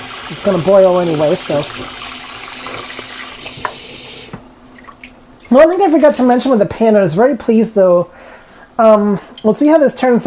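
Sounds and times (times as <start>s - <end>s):
faucet water filling a measuring cup: 0.0s - 6.3s
speech: 0.3s - 2.0s, 5.5s - 8.2s, 8.8s - 10.2s.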